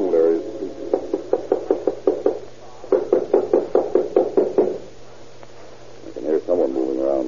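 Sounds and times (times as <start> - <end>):
man speaking: 0.0 - 0.8, 6.0 - 7.2
police knocking on an apartment door: 0.9 - 4.9.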